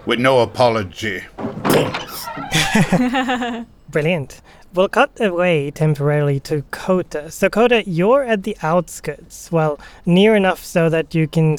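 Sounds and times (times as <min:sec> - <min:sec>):
speech: 0:00.0 - 0:11.5
large door sliding open with a rushing scrape: 0:01.0 - 0:02.9
laughter: 0:02.1 - 0:03.7.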